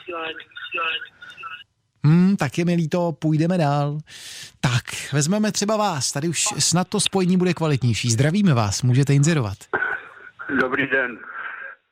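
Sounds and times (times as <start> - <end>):
tinny voices on an open telephone line: 0.0 - 1.7, 9.7 - 11.8
speech: 0.1 - 9.9, 10.5 - 11.4.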